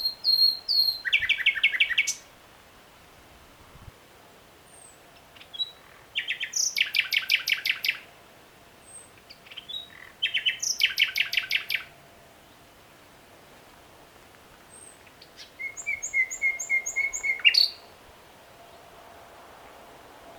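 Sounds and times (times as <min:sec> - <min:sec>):
Common nightingale Luscinia megarhynchos singing: 0:00.0 - 0:02.3, 0:04.7 - 0:08.1, 0:08.8 - 0:11.9, 0:14.7 - 0:18.9.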